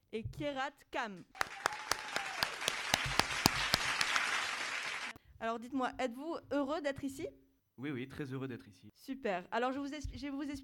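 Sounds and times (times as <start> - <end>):
speech: 0.1 - 1.6, 5.4 - 10.6
audience applause: 1.4 - 5.2.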